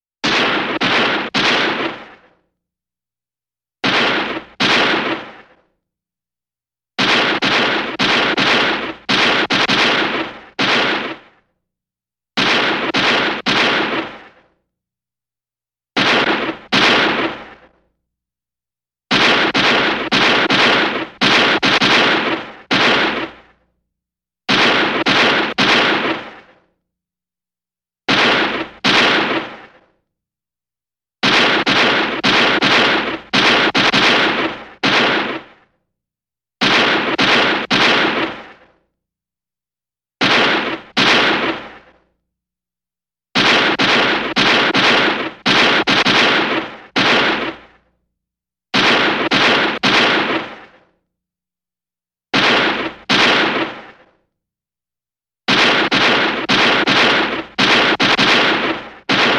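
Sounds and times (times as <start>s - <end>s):
vintage movie gunshot: 0.2s - 2.5s, 3.8s - 5.8s, 7.0s - 11.6s, 12.4s - 14.6s, 16.0s - 17.9s, 19.1s - 23.7s, 24.5s - 26.8s, 28.1s - 30.0s, 31.2s - 35.8s, 36.6s - 38.8s, 40.2s - 42.2s, 43.4s - 47.9s, 48.8s - 51.0s, 52.3s - 54.2s, 55.5s - 59.3s.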